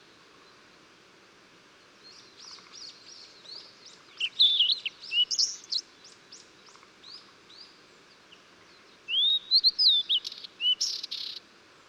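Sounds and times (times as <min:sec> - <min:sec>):
Blue-and-white flycatcher singing: 0:03.2 - 0:05.8, 0:09.1 - 0:11.4.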